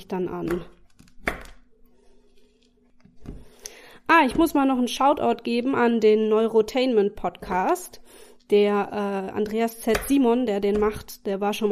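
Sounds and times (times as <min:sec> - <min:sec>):
speech: 0:00.0 - 0:00.8, 0:04.1 - 0:11.7
knife chopping chocolate: 0:00.4 - 0:01.7, 0:09.7 - 0:11.7.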